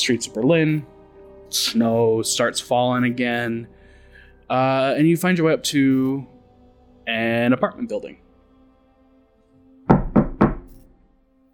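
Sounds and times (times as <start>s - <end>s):
speech: 0.0s - 0.9s, 1.5s - 3.8s, 4.5s - 6.3s, 7.1s - 8.2s
knocking on a wooden door: 9.9s - 10.7s.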